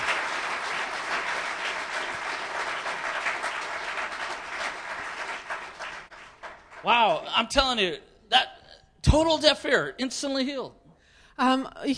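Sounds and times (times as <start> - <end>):
crowd applauding at a faith-healing service: 0.0 - 7.3
speech: 6.8 - 10.8, 11.4 - 11.9.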